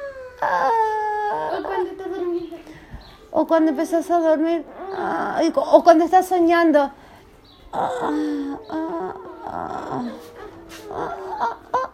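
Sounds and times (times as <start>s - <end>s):
person imitating small dog whining: 0.0s - 2.4s, 4.6s - 5.6s, 7.7s - 11.9s
speech: 3.3s - 7.0s, 7.7s - 11.6s.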